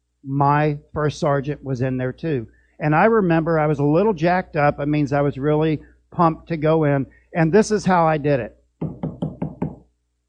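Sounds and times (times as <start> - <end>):
speech: 0.2 - 9.0
corporal knocking on a wooden door: 8.8 - 9.8.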